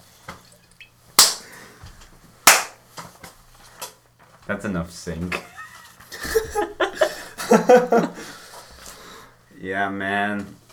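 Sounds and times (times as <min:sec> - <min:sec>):
high five hand slaps: 0:01.2 - 0:01.5, 0:02.4 - 0:02.8
speech: 0:04.5 - 0:05.5, 0:07.5 - 0:08.4, 0:09.6 - 0:10.6
laughter: 0:05.3 - 0:08.4.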